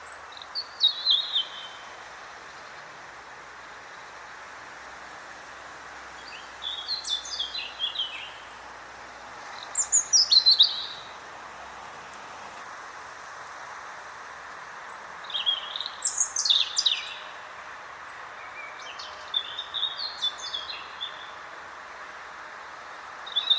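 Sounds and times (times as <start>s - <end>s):
European robin Erithacus rubecula singing: 0.0s - 2.8s, 6.2s - 8.6s, 9.5s - 11.2s, 14.8s - 17.5s, 18.1s - 21.4s, 22.8s - 23.5s
soft constant background hiss: 0.0s - 23.5s.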